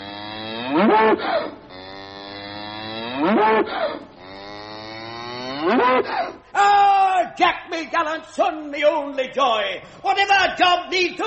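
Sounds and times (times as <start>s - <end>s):
cow mooing with a rising wavering low bellow: 0.0s - 6.0s
speech: 0.8s - 1.6s, 3.4s - 3.8s, 7.4s - 11.2s.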